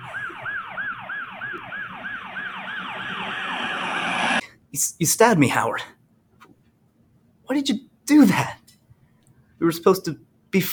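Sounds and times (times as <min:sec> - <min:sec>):
police siren wailing in up-and-down sweeps: 0:00.0 - 0:04.4
speech: 0:04.7 - 0:06.0, 0:07.6 - 0:08.6, 0:09.6 - 0:10.7.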